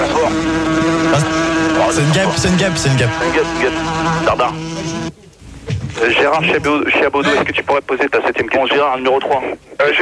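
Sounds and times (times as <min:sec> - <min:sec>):
fly buzzing around: 0:00.0 - 0:05.2
speech: 0:01.9 - 0:05.2, 0:06.0 - 0:10.0.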